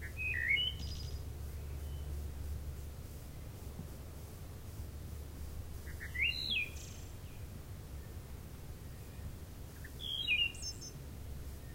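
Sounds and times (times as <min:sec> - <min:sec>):
wood thrush song: 0:00.0 - 0:02.4, 0:05.6 - 0:11.0
constant low hum: 0:00.0 - 0:11.7.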